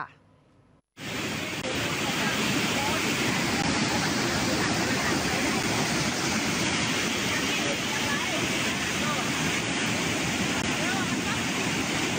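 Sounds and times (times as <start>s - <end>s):
speech: 0.0s - 0.2s
roar of rushing flash floodwater: 1.0s - 12.1s.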